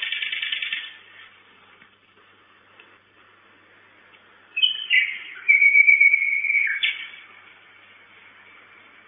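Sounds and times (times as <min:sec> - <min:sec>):
common nightingale singing at a nest box at night: 0:00.0 - 0:01.0, 0:04.5 - 0:07.4.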